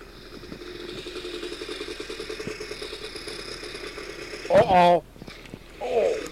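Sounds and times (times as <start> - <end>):
snowmobile engine running hard in a race: 0.0 - 6.3
speech: 4.5 - 5.1.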